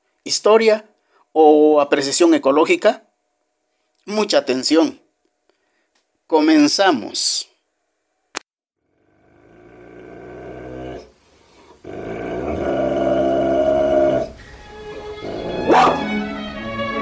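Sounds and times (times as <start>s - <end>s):
speech: 0.2s - 3.0s, 4.0s - 5.0s, 6.3s - 7.5s
dog growling and barking: 9.2s - 11.1s, 11.8s - 16.2s.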